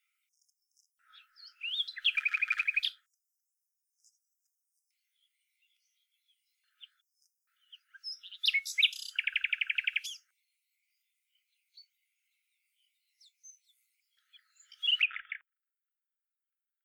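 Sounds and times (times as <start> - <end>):
common nightingale Luscinia megarhynchos singing rattling trills: 1.4 - 3.0, 8.0 - 10.2, 14.7 - 15.3.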